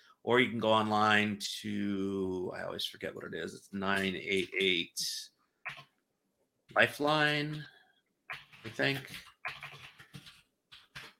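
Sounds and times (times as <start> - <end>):
speech: 0.2 - 5.8, 6.7 - 7.8, 8.6 - 9.6
typing on a mechanical keyboard: 8.3 - 11.1.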